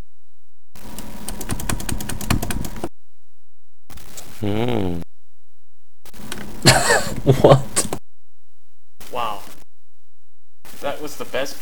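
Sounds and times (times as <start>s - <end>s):
rapid keyboard and mouse clicking: 1.0s - 2.9s
speech: 4.4s - 5.1s
laughter: 6.6s - 8.0s.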